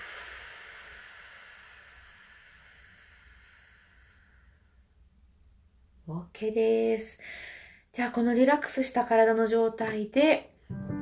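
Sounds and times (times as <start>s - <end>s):
breath released during a relaxing breathing exercise: 0.0s - 4.8s
speech: 6.1s - 10.9s.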